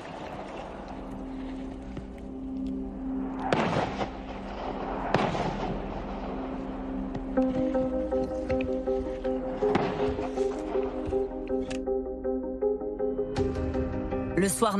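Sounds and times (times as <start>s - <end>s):
steady low drone: 0.2s - 14.4s
heavy artillery cannon blasts: 3.5s - 6.5s
speech: 14.6s - 14.7s.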